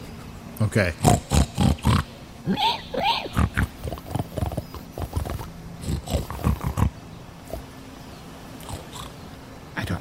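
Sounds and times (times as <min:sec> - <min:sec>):
speech: 0:00.6 - 0:01.4, 0:02.4 - 0:03.6
people imitating pig snuffling grunts and snorts: 0:01.0 - 0:07.0.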